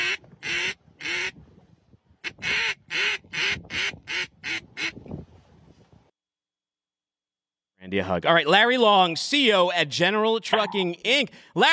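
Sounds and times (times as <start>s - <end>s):
duck call blown by a Labrador: 0.0s - 1.4s, 2.2s - 5.0s
speech: 7.9s - 11.7s.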